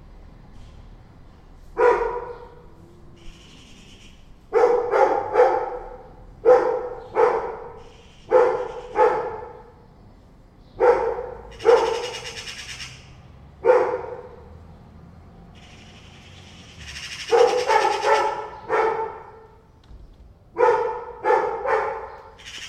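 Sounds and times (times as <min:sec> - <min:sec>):
dog barking at two cats: 0:01.7 - 0:02.7, 0:04.5 - 0:09.8, 0:10.8 - 0:12.4, 0:13.6 - 0:14.6, 0:17.2 - 0:19.7, 0:20.5 - 0:22.4
magpies giving harsh chattering calls: 0:03.2 - 0:04.4, 0:07.0 - 0:09.4, 0:11.5 - 0:13.3, 0:15.5 - 0:18.7, 0:22.4 - 0:22.6.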